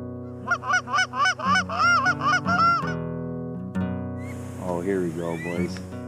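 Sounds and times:
goose call honking during a goose calling lesson: 0.4 - 3.0, 4.2 - 5.9
speech: 4.8 - 6.0.

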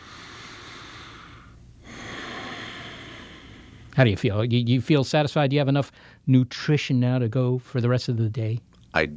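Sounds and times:
deep breath drawn in: 0.0 - 3.9
speech: 4.0 - 9.1.

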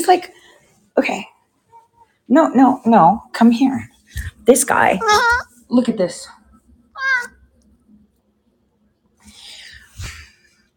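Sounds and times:
speech: 0.0 - 1.4, 2.3 - 6.4
male rescue cat meowing: 5.0 - 5.5, 7.0 - 7.4.

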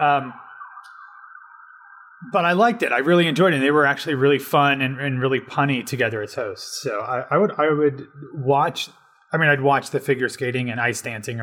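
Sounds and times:
speech: 0.0 - 0.5, 2.2 - 11.4
ambulance siren wailing: 0.0 - 7.3.

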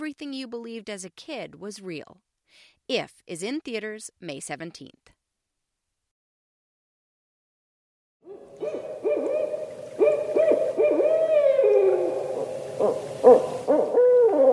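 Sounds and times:
speech: 0.1 - 5.2, 12.8 - 13.9
barred owl hooting call: 8.3 - 14.5.

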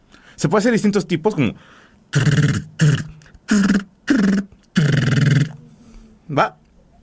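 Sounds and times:
speech: 0.4 - 3.8, 6.3 - 6.6
man's voice imitating machine-gun fire: 2.2 - 5.6.

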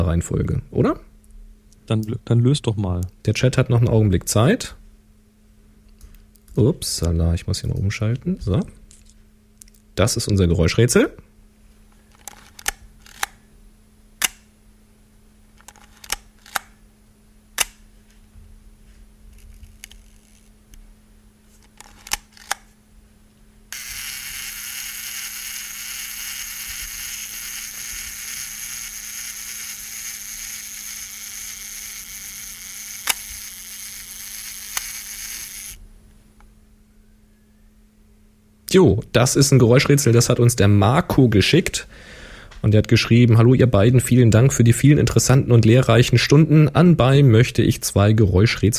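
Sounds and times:
speech: 0.0 - 1.1, 1.9 - 4.8, 6.6 - 8.8, 10.0 - 11.3, 38.7 - 48.7
Leica M2 film camera self-timer whirring buzz: 2.4 - 40.1
1964 Leica M2 film camera shutter releases and winding: 23.8 - 35.8.

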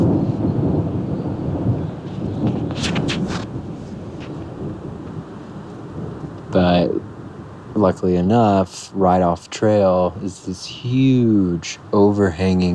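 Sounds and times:
deep rolling thunder from an afternoon storm: 0.0 - 8.5
crackle of higher hiss: 0.0 - 12.7
wind-like noise: 0.0 - 12.7
speech: 7.8 - 12.7.

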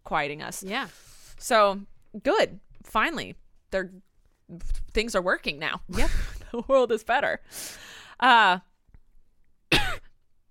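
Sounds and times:
speech: 0.1 - 8.7
person coughing or clearing throat close to the microphone: 9.7 - 10.2.

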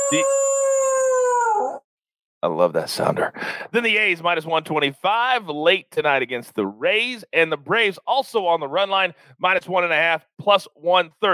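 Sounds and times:
dog howling: 0.0 - 1.8
speech: 0.1 - 0.4, 2.4 - 11.3.

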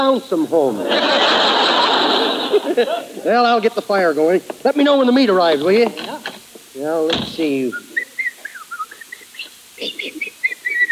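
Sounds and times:
speech: 0.0 - 1.8, 2.5 - 7.9, 9.8 - 10.3
laughter: 0.6 - 3.3, 8.0 - 10.9
person whistling quick high notes: 7.7 - 10.9.

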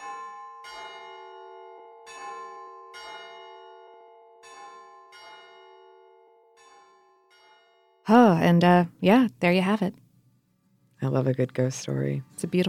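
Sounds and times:
church bell ringing: 0.0 - 8.1
speech: 8.1 - 10.0, 11.0 - 12.6.

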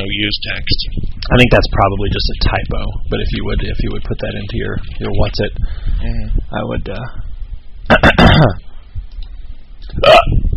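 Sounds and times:
speech: 0.1 - 7.2, 7.9 - 8.6, 9.9 - 10.4
person belching: 7.9 - 8.6, 10.0 - 10.4
person hiccuping: 7.9 - 8.6, 9.9 - 10.4.

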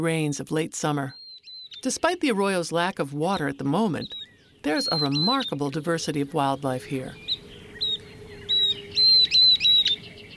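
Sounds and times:
speech: 0.0 - 1.2, 1.8 - 7.3
Northern Beardless-Tyrannulet singing thin high whistled notes in a desert arroyo: 1.1 - 2.0, 3.9 - 5.8, 7.1 - 10.3.

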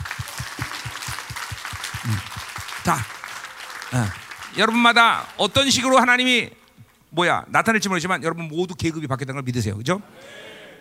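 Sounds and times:
church audience clapping on Jeju Island: 0.0 - 6.0
speech: 2.0 - 3.2, 3.9 - 10.6.

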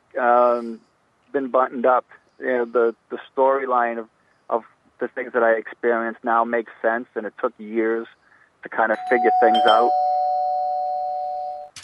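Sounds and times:
hissy noise: 0.1 - 0.8, 1.4 - 9.0
speech: 0.2 - 10.2
electronic doorbell ringing: 9.0 - 11.8.

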